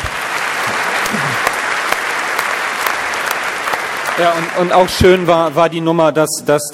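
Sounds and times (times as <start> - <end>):
sharp individual claps: 0.0 - 5.2
audience applauding: 0.0 - 6.0
speech: 4.2 - 6.7.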